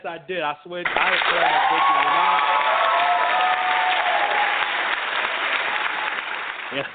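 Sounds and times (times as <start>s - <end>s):
speech: 0.0s - 2.8s, 6.7s - 6.9s
dense crowd applause: 0.8s - 6.9s.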